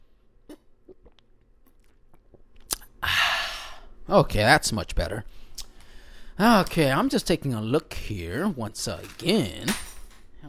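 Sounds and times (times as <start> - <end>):
person sipping a drink: 0.5 - 3.0
speech: 4.1 - 5.4, 6.4 - 10.4.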